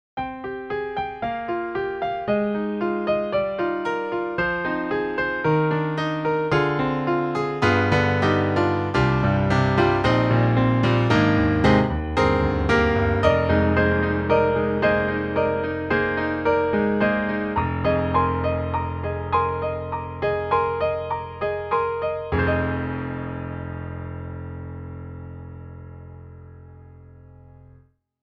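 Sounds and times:
sampled grand piano from a software instrument: 0.2 - 27.8.

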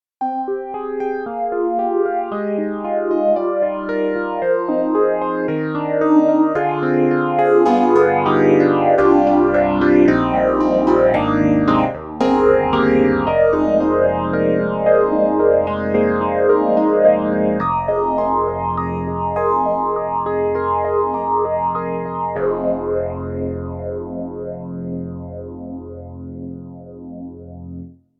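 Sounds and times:
Yamaha CP80 electric piano with mono phaser: 0.2 - 27.9.

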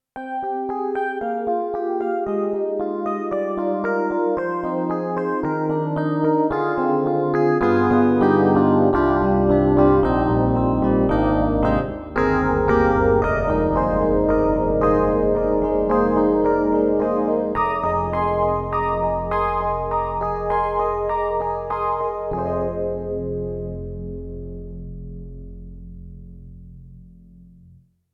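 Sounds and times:
synthesizer DX phase electric piano: 0.2 - 27.8.

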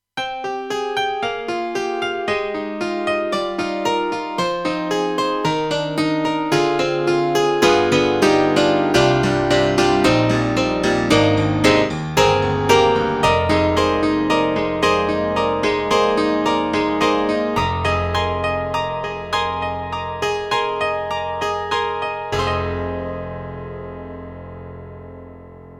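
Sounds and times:
KORG X5DR Hammer Piano: 0.2 - 25.7.

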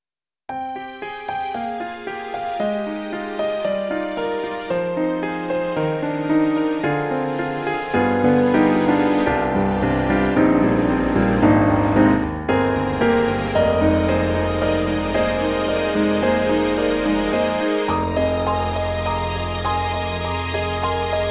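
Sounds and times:
Roland SonicCell Grand Hall piano: 0.5 - 21.2.

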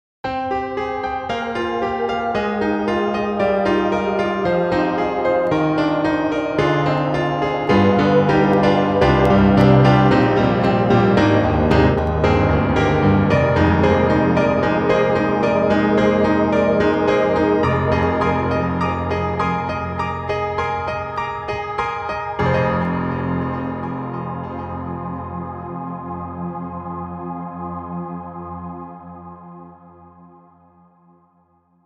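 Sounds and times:
micropiano: 0.2 - 30.9
trance synth stack: 2.4 - 20.0.

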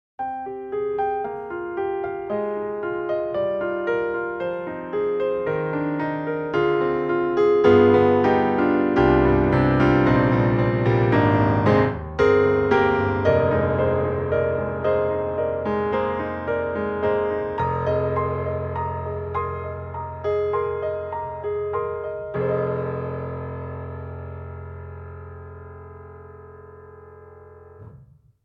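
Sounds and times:
rosewood grand piano: 0.2 - 28.4.

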